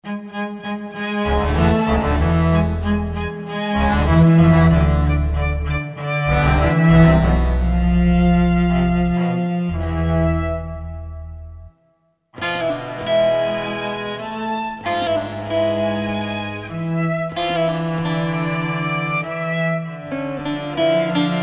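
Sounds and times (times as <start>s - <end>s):
cello: 0.0s - 11.8s, 12.4s - 21.4s
baglama: 0.1s - 11.6s, 12.4s - 21.4s.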